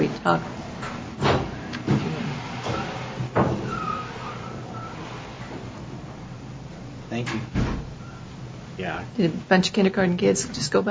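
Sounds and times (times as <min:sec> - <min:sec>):
speech: 0:00.2 - 0:01.0, 0:07.2 - 0:07.6, 0:08.8 - 0:10.8
door being pushed shut: 0:01.2 - 0:04.2, 0:07.2 - 0:08.0.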